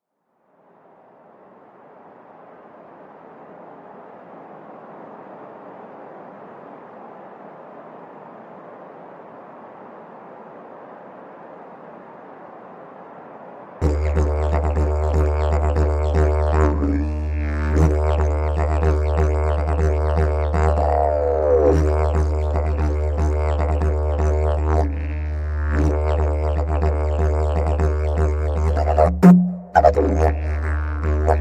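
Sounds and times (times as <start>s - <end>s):
didgeridoo played in Australia: 13.8s - 31.3s.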